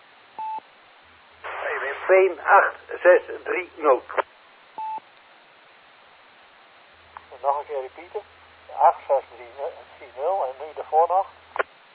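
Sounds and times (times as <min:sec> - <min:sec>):
talk over a thin narrowband telephone line: 0:01.5 - 0:04.3, 0:07.3 - 0:11.7
speech: 0:02.1 - 0:04.3, 0:07.8 - 0:11.4
short electronic dialing-style telephone beep: 0:04.8 - 0:05.0.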